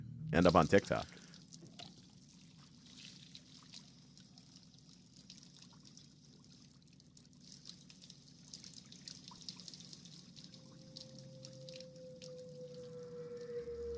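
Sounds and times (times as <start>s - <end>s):
speech: 0.3s - 1.2s
water trickling from a running tap: 1.2s - 13.9s
faint whistling tone: 10.6s - 13.9s.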